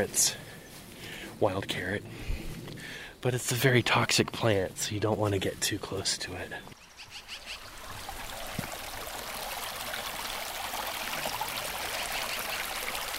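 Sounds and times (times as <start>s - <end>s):
speech: 0.0s - 0.4s, 1.4s - 2.4s, 3.2s - 6.8s
creek water flowing: 5.4s - 13.1s.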